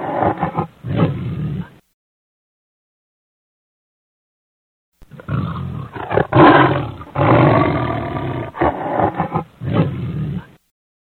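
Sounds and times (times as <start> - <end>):
lion roaring: 0.0 - 1.8, 5.0 - 10.6.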